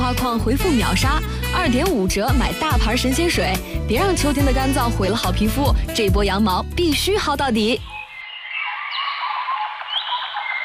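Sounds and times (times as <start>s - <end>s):
speech: 0.1s - 8.0s
dense chorus of birdsong: 7.8s - 10.6s.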